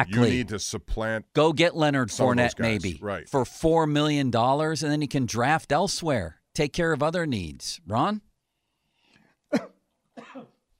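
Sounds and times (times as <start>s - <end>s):
speech: 0.0s - 8.3s, 9.5s - 10.5s
person coughing: 9.5s - 10.6s.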